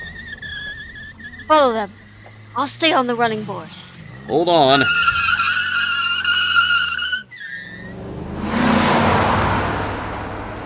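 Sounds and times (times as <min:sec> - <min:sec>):
roaring rush of speeding car engines: 0:00.0 - 0:10.6
tires screeching as a car skids: 0:00.0 - 0:10.6
speech: 0:01.5 - 0:02.0, 0:02.6 - 0:05.1
wind rushing: 0:07.9 - 0:10.6.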